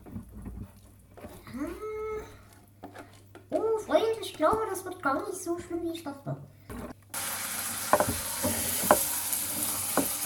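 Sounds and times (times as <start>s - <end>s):
speech: 3.9s - 6.5s
moist meat mixture sizzling in hot oil in a pot: 7.2s - 10.2s.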